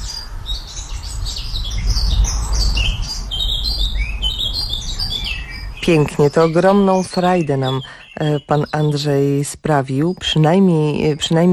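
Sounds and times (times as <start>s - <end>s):
birds chirping and squawking in a garden on a summer afternoon: 0.0s - 11.5s
soft low rumble: 0.4s - 6.0s
speech: 5.8s - 11.5s.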